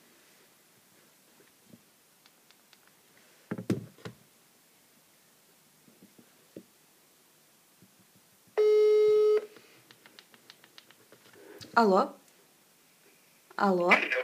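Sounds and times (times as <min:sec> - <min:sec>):
loud steady phone tone: 0:08.6 - 0:09.5
faint clicks: 0:09.6 - 0:12.4
speech: 0:11.8 - 0:12.2, 0:13.6 - 0:14.2.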